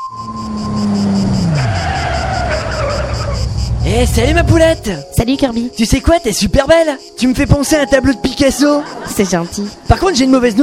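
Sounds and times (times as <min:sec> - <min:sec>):
sports car tires skidding and squealing: 0:00.0 - 0:04.8
sports car engine: 0:00.0 - 0:05.1
speech: 0:04.0 - 0:10.6
laughter: 0:08.1 - 0:10.6.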